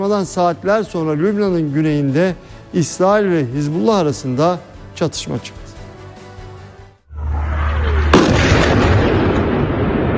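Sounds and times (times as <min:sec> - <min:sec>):
speech: 0:00.0 - 0:05.6
explosion from an Israeli strike on southern Lebanon: 0:07.1 - 0:10.1
steady low hum: 0:07.1 - 0:10.1.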